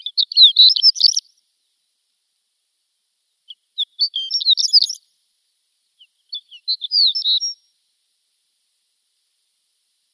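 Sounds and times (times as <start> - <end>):
shore lark song: 0.0 - 1.4, 3.4 - 5.1, 6.0 - 7.7.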